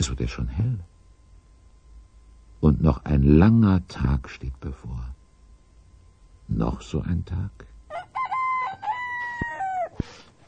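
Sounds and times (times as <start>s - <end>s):
speech: 0.0s - 1.0s, 2.6s - 5.2s, 6.5s - 8.1s
rooster crowing as day breaks: 7.9s - 10.3s.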